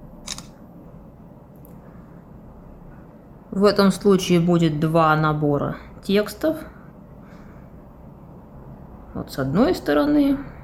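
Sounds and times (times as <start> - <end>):
steady low hum: 0.0 - 10.6
phone camera shutter clicking taking a photo of printed text: 0.2 - 0.6
speech: 3.6 - 6.7, 9.2 - 10.5.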